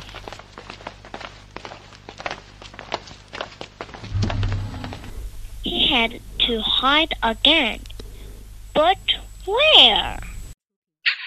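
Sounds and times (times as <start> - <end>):
footsteps thudding at a walking pace: 0.0 - 6.9
low rumble: 4.0 - 9.4
speech: 5.9 - 7.8, 8.8 - 10.2.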